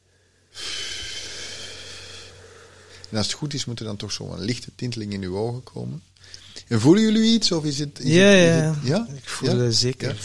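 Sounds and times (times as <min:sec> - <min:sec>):
slow breathy exhale during a guided breathing exercise: 0:00.0 - 0:03.0
speech: 0:03.1 - 0:10.2.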